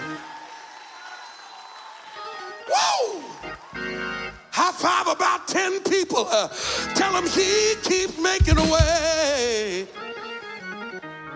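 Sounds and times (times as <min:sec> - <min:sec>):
audience clapping: 0:00.0 - 0:04.5, 0:08.1 - 0:10.7
person giving a loud whooping cry: 0:02.6 - 0:03.5
speech: 0:04.8 - 0:10.1.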